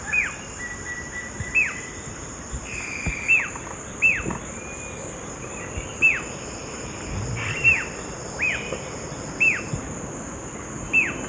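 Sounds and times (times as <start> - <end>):
high-pitched insect hum: 0.0 - 11.2
Yellow-billed jacamar calling in the eastern lowlands of South America: 7.1 - 8.1.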